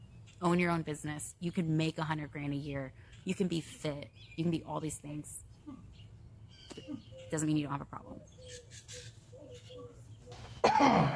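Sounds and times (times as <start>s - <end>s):
speech: 0.4s - 5.9s, 6.8s - 9.0s, 10.8s - 11.1s
loud raspy cough: 10.6s - 11.1s.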